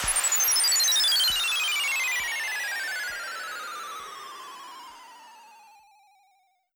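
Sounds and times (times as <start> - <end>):
sweeping sound effect: 0.0 - 4.0.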